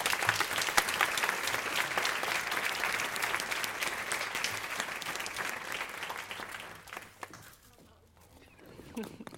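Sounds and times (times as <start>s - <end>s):
audience applauding as two people are welcomed onto a stage: 0.0s - 7.5s.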